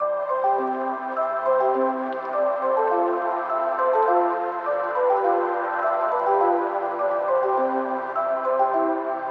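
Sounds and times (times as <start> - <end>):
melody in C major: 0.0 - 9.2.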